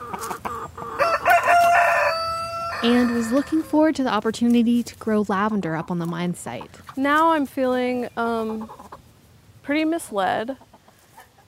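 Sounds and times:
chickens clucking in a small garden: 0:00.0 - 0:04.6, 0:05.2 - 0:09.2, 0:10.1 - 0:11.4
speech: 0:00.1 - 0:01.0, 0:02.8 - 0:08.8, 0:09.6 - 0:10.7
rooster crowing in a small garden: 0:01.0 - 0:03.7.

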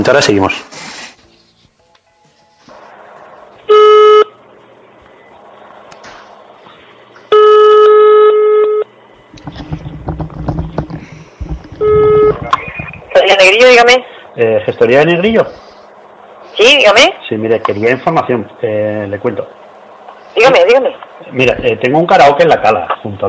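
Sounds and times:
speech: 0:00.0 - 0:00.9, 0:13.8 - 0:15.6, 0:16.6 - 0:19.6, 0:20.4 - 0:23.2
telephone ringing tone while placing a call: 0:03.7 - 0:04.4, 0:07.3 - 0:08.9, 0:11.8 - 0:13.0.

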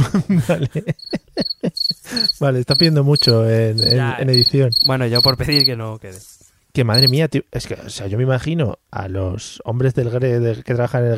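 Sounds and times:
laughter: 0:00.0 - 0:02.4
speech: 0:00.2 - 0:11.1
cricket chirping: 0:00.9 - 0:05.7, 0:06.9 - 0:07.2.

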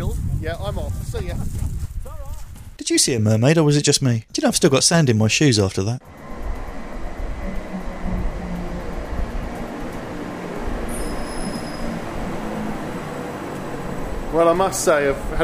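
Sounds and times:
speech: 0:00.4 - 0:01.8, 0:02.8 - 0:06.3, 0:14.4 - 0:15.4
train rolling past a railway station platform: 0:06.0 - 0:15.4.

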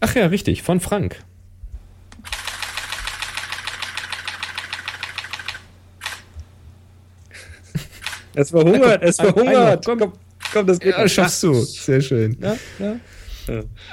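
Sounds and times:
speech: 0:00.0 - 0:01.4, 0:08.4 - 0:13.9
Pentax K5 digital SLR camera continuous-mode shutter clicks: 0:02.2 - 0:06.3, 0:08.0 - 0:08.3, 0:10.4 - 0:10.6
laughter: 0:07.3 - 0:09.8.

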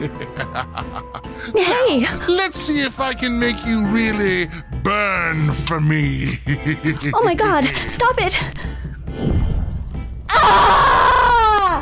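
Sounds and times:
laughter: 0:00.0 - 0:01.5, 0:06.2 - 0:07.7
speech: 0:00.0 - 0:09.3, 0:10.4 - 0:10.8
person screaming in agony: 0:10.3 - 0:11.8.

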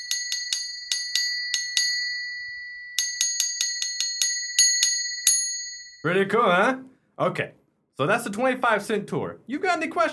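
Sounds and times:
ice cream truck bell ringing: 0:00.0 - 0:06.2
speech: 0:06.0 - 0:10.1.

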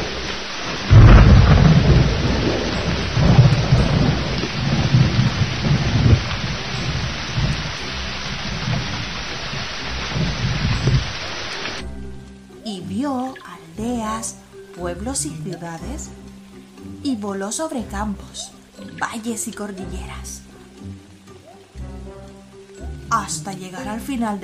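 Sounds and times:
deep rolling thunder: 0:00.0 - 0:11.8
heavy rain pouring: 0:00.0 - 0:24.4
speech: 0:15.1 - 0:16.3, 0:17.0 - 0:21.0, 0:23.2 - 0:24.4.

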